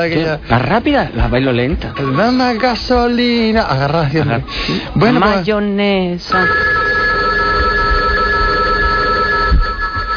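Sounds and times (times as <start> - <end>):
speech: 0.0 - 6.8
telephone ringing: 6.3 - 10.1.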